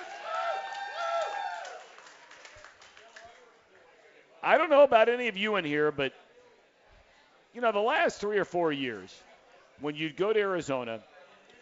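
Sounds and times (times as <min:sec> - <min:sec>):
audience whoops and cheering voices: 0:00.0 - 0:02.1
audience applause: 0:00.0 - 0:03.5
speech: 0:04.4 - 0:06.3, 0:07.6 - 0:11.1.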